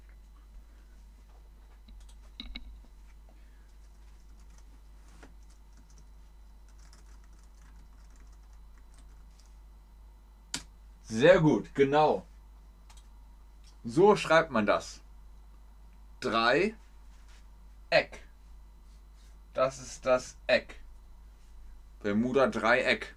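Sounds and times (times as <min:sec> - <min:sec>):
keyboard typing: 0:01.9 - 0:02.7, 0:03.7 - 0:04.8, 0:05.4 - 0:06.1, 0:06.7 - 0:09.5
speech: 0:11.1 - 0:12.3, 0:13.8 - 0:15.0, 0:16.2 - 0:16.8, 0:17.9 - 0:18.2, 0:19.6 - 0:20.8, 0:22.0 - 0:23.1.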